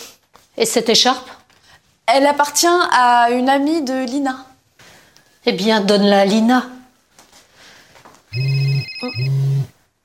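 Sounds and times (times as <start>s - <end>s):
faint room noise: 0.0s - 10.0s
speech: 0.6s - 1.4s, 2.1s - 4.5s, 5.4s - 6.7s, 8.4s - 9.8s
mobile phone ringing: 8.3s - 9.7s.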